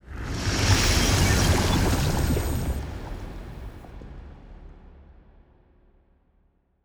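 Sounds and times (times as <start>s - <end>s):
science ship moving: 0.6s - 3.9s.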